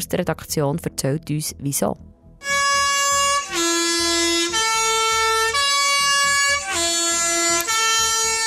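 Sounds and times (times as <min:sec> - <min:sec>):
speech: 0:00.0 - 0:02.1
Swiss postbus three-tone horn on a bus running uphill: 0:02.4 - 0:08.4.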